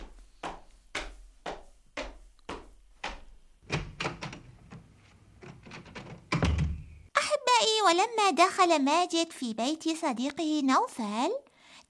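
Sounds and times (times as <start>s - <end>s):
door thumping and rattling as it is pulled open: 3.6s - 7.1s
speech: 7.9s - 11.4s.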